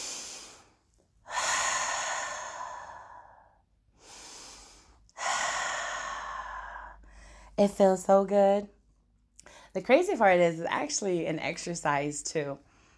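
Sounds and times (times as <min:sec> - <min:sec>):
slow deep human breathing: 0:00.0 - 0:07.6
speech: 0:07.6 - 0:08.8, 0:09.8 - 0:12.7.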